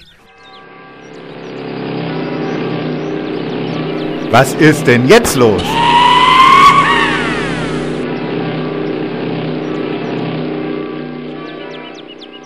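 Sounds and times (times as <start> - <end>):
motorcycle engines revving in Warmensteinach: 1.1 - 12.3
speech: 4.3 - 6.2.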